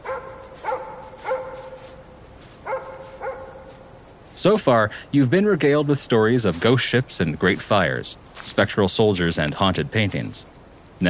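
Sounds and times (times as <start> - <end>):
dog barking on quiet streets near a harbor: 0.0 - 3.9
steady low hiss: 0.0 - 11.0
speech: 4.4 - 11.0.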